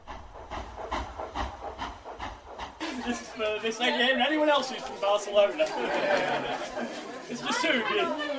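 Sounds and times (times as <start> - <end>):
rhythmic rumbling train clatter: 0.0 - 7.7
laughter: 2.8 - 8.3
speech: 3.0 - 8.3.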